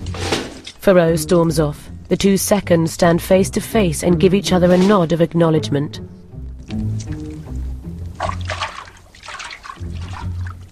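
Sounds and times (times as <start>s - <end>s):
speech: 0.8s - 6.8s
water heated by a fire poured into a tin bath: 6.8s - 10.6s.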